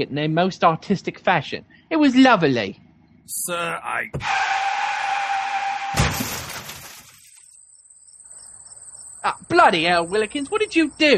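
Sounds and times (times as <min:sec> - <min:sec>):
speech: 0:00.0 - 0:04.6, 0:09.2 - 0:11.1
car skidding with sustained tire squeal: 0:04.2 - 0:06.0
car crash impact as its hood caves in: 0:05.8 - 0:07.4
shattering and clattering debris: 0:06.0 - 0:07.5.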